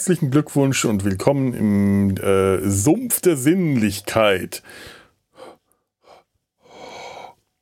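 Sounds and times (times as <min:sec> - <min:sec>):
speech: 0:00.0 - 0:05.0
loud breaths blown into a microphone: 0:04.6 - 0:07.5.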